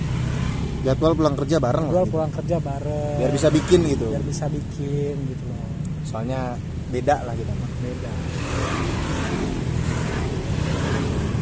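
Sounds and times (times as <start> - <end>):
motorcycle engines passing along a roadside: 0.0 - 11.4
speech: 0.8 - 9.2.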